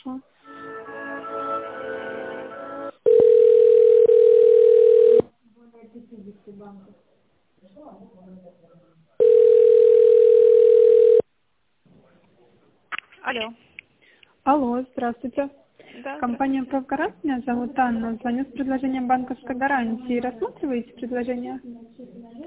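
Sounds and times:
telephone line tone while a call is transferred: 3.1 - 5.2, 9.2 - 11.2
speech: 14.4 - 22.3.

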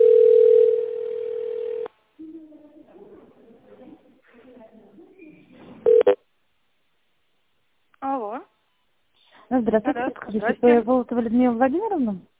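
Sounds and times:
steady telephone tone on a call to a company: 0.0 - 1.9, 5.9 - 6.2
speech: 9.6 - 12.3.

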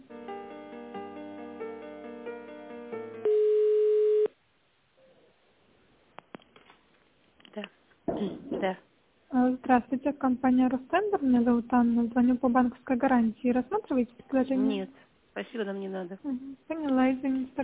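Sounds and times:
one loud unbroken telephone line beep: 3.2 - 4.3
quiet telephone line hiss with faint clicks: 6.1 - 8.0, 16.7 - 17.6
speech: 9.7 - 17.6.

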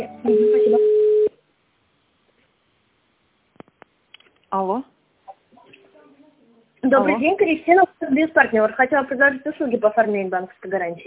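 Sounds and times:
telephone line tone during a call transfer: 0.0 - 1.4
speech: 4.5 - 4.9, 6.8 - 11.0.

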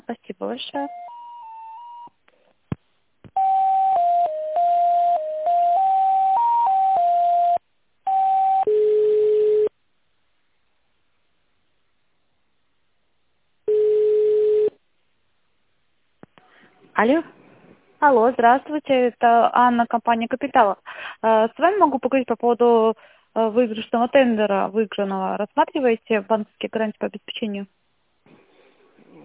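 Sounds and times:
speech: 0.1 - 1.2, 17.0 - 17.3, 18.0 - 27.8
telephone line tones while a call is transferred to an accounting department: 3.4 - 9.7, 13.7 - 14.8.

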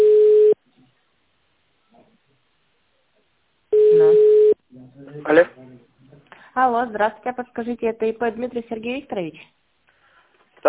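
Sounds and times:
telephone line tone while placing a call: 0.0 - 0.6, 3.8 - 4.6
speech: 5.3 - 5.6, 6.6 - 9.6.

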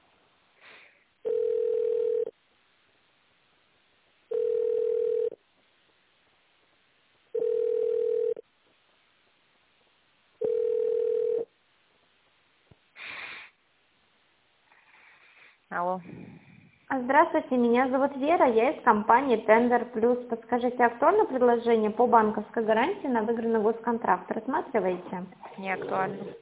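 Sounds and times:
telephone ringback tone while a call is transferred: 1.2 - 2.3, 4.3 - 5.4, 7.4 - 8.4, 10.4 - 11.5
speech: 15.7 - 26.3.

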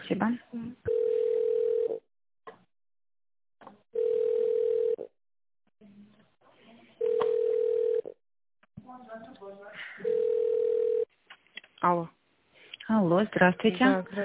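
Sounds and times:
speech: 0.1 - 0.9, 13.1 - 14.2
telephone ringback tone during call transfer: 0.9 - 2.0, 4.0 - 5.0, 7.0 - 8.1, 10.0 - 11.0.

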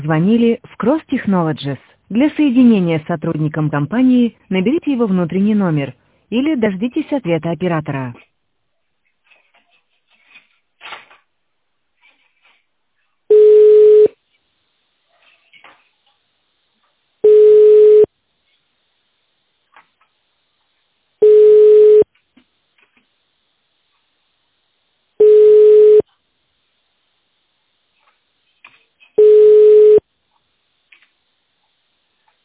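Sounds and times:
speech: 0.0 - 8.3
telephone busy signal tone bursts for an engaged line: 13.3 - 14.1, 17.2 - 18.1, 21.2 - 22.1, 25.2 - 26.0, 29.2 - 30.0.

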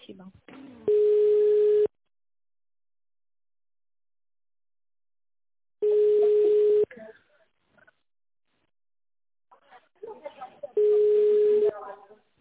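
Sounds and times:
telephone line ringing tones while a call is transferred: 0.9 - 1.9, 5.8 - 6.9, 10.8 - 11.8.

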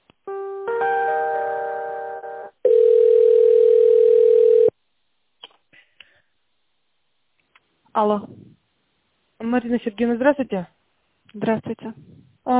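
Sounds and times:
telephone line buzzing tone during a call transfer: 2.6 - 4.7
speech: 8.0 - 8.4, 9.5 - 12.5.

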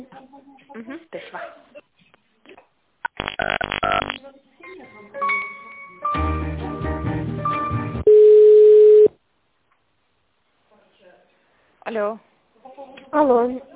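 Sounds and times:
bursts of mixed sound: 3.0 - 4.2
telephone line tone while a call is being transferred: 8.1 - 9.2
speech: 12.0 - 12.3, 13.2 - 13.7.

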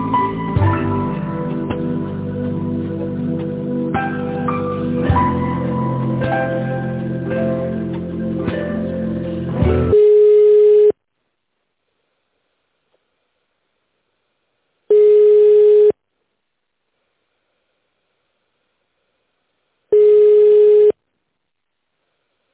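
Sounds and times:
hold music: 0.0 - 10.0
telephone ringing tone during a call transfer: 9.9 - 11.0, 14.9 - 16.0, 20.0 - 21.0.

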